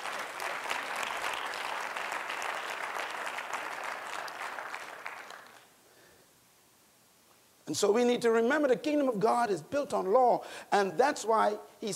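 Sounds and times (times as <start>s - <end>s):
church congregation clapping during a sermon: 0.0s - 5.7s
speech: 7.7s - 11.9s.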